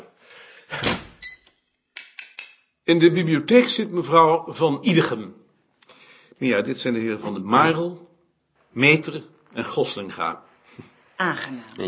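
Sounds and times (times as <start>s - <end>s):
door into the rear part of a house opening and closing: 0.7s - 1.5s
speech: 2.9s - 5.4s, 6.4s - 8.1s, 8.7s - 11.8s.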